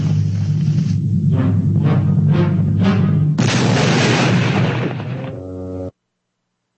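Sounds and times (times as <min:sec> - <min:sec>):
rhythmic thumps: 0:00.0 - 0:03.6, 0:05.0 - 0:05.9
cartoon explosion from an exploding cigar: 0:03.4 - 0:05.4.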